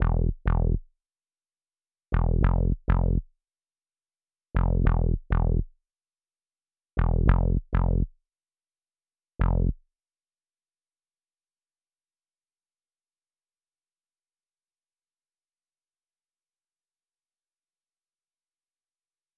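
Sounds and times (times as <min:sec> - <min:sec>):
West Coast bass melody loop in A minor: 0:00.0 - 0:00.8, 0:02.2 - 0:03.2, 0:04.6 - 0:05.7, 0:07.0 - 0:08.1, 0:09.4 - 0:09.8.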